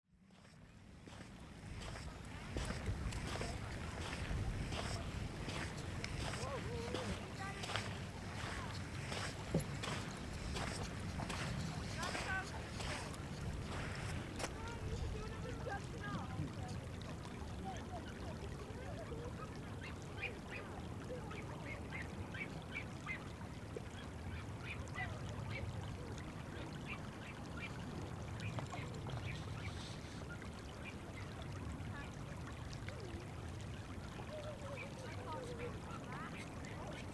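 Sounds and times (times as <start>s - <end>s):
flowing water: 0.1s - 37.1s
footsteps on sand: 0.3s - 16.2s.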